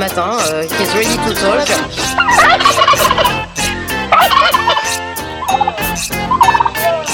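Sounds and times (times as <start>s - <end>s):
speech: 0.0s - 3.5s
turkey gobbling: 2.0s - 3.4s, 4.1s - 6.9s.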